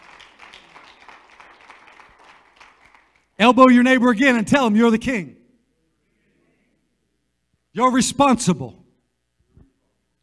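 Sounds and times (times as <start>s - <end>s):
crowd of people clapping their hands: 0.0s - 3.4s
speech: 3.4s - 5.4s, 7.8s - 8.8s.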